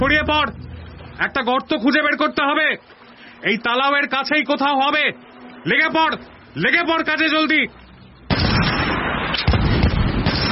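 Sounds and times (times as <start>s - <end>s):
speech: 0.0s - 7.8s
modern rifle gunfire in hilly terrain: 8.3s - 10.4s.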